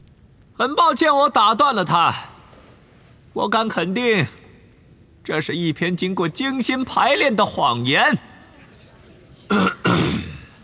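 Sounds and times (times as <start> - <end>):
speech: 0.6 - 2.3, 3.4 - 4.4, 5.2 - 8.3, 9.5 - 9.8
man clearing throat at a court hearing: 9.5 - 10.6.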